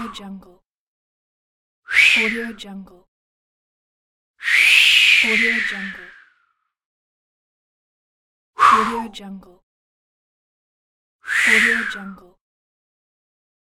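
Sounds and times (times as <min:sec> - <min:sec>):
human mouth swoosh: 0:01.9 - 0:02.4, 0:04.4 - 0:06.3, 0:11.3 - 0:12.1.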